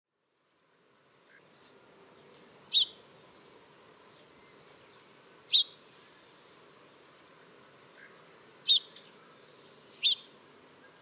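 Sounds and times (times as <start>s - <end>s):
House sparrow Passer domesticus chirping: 2.7s - 3.0s, 5.5s - 5.8s, 8.7s - 9.0s, 10.0s - 10.3s.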